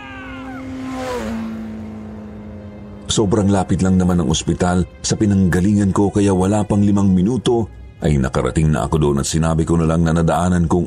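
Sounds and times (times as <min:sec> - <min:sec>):
motorcycle engine starting and speeding off: 0:00.0 - 0:05.0
speech: 0:03.2 - 0:10.8.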